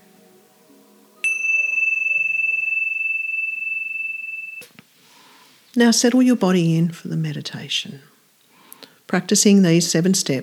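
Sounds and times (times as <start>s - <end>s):
single meditation bell struck: 1.2s - 4.8s
speech: 5.8s - 8.1s, 9.1s - 10.4s.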